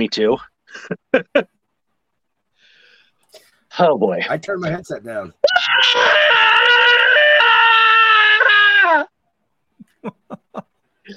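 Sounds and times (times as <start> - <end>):
speech: 0.0 - 1.5, 3.8 - 6.4, 10.0 - 11.1
loud sustained human scream: 5.4 - 9.2
laughter: 9.8 - 10.8.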